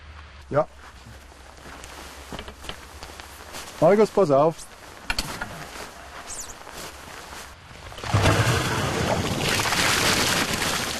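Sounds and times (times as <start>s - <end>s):
outdoor ambience: 0.0s - 10.9s
speech: 0.5s - 1.1s, 3.8s - 4.7s
water gushing from a flushed water main pipe: 8.0s - 10.9s.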